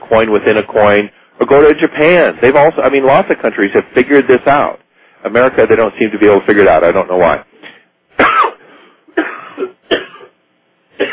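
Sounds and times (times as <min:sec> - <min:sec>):
speech: 0:00.1 - 0:07.5
person coughing: 0:07.6 - 0:10.4, 0:11.0 - 0:11.1.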